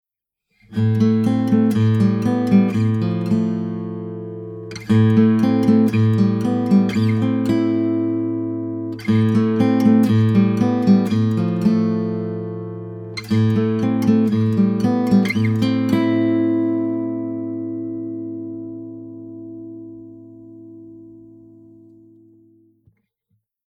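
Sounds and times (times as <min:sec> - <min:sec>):
guitar: 0:00.5 - 0:23.0.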